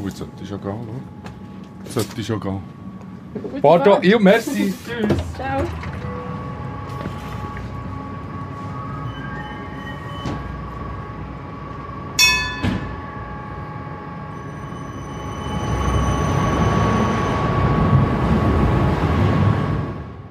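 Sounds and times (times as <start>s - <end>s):
tram rumbling into motion on rails from depot: 0.0s - 20.2s
speech: 0.1s - 5.9s
sharp metallic clanks: 12.2s - 13.0s
brief bell-like ring: 12.2s - 13.2s.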